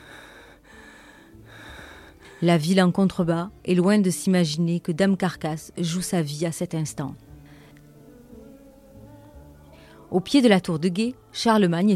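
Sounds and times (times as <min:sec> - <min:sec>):
heavy out-of-breath panting: 0:00.0 - 0:02.5
speech: 0:02.4 - 0:07.3, 0:10.1 - 0:11.9.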